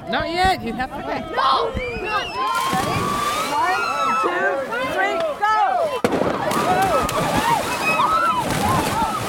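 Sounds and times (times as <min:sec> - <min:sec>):
speech: 0:00.1 - 0:05.5
crowd of people shrieking and yelling: 0:01.2 - 0:09.2
cold bay water sloshing and splashing: 0:02.4 - 0:09.2.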